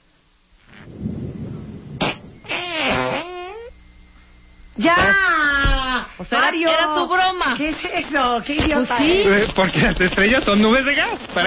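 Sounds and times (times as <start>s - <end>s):
comedic fart sound effect: 0.6s - 1.1s, 1.9s - 3.8s
speech: 4.8s - 5.5s, 6.2s - 11.4s.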